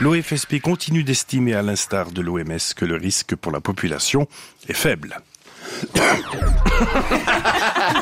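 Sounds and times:
speech: 0:00.0 - 0:08.0
person coughing and hacking: 0:05.9 - 0:07.1
laughter: 0:06.3 - 0:08.0.

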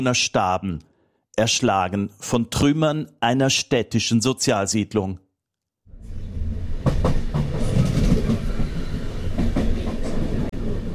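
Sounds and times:
speech: 0:00.0 - 0:05.2
regional express train rolling along the tracks through the Po Valley near Bergamo Italy: 0:05.9 - 0:10.9
regional express train wheels clickety-clack: 0:06.8 - 0:10.5.

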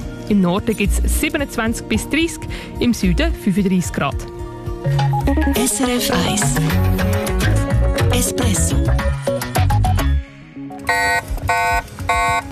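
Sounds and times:
music: 0:00.0 - 0:12.5
speech: 0:00.3 - 0:07.2, 0:08.1 - 0:09.4
e-bike anti-theft alarm beeping: 0:10.9 - 0:12.5.

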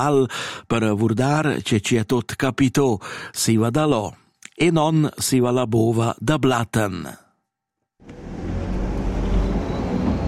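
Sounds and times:
speech: 0:00.0 - 0:07.2
road noise: 0:08.0 - 0:10.2
postal bus engine rumbling on narrow road between Goppenstein and Lötschental valley: 0:08.1 - 0:10.2.

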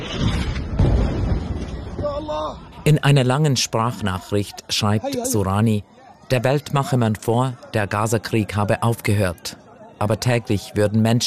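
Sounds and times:
steady noise: 0:00.0 - 0:11.2
deep explosion booming at night in Gaza City: 0:00.1 - 0:02.0
speech: 0:02.2 - 0:11.2.

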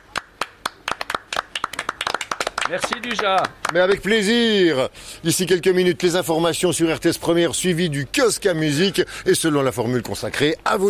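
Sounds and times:
small group clapping for themselves in a studio: 0:00.0 - 0:04.1
speech: 0:02.7 - 0:10.8.

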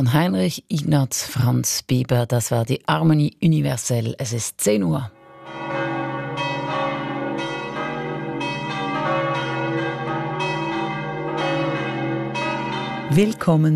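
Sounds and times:
speech: 0:00.0 - 0:05.2, 0:13.1 - 0:13.7
Roman Catholic church bells ringing in Sachsen, Obwalden, Switzerland: 0:05.2 - 0:13.7.

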